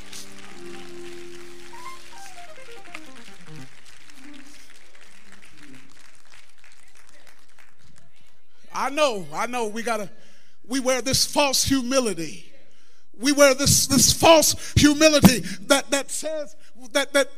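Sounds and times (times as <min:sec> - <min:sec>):
audience clapping hands in applause: 0:00.0 - 0:08.5
speech: 0:08.8 - 0:12.5, 0:13.2 - 0:17.3.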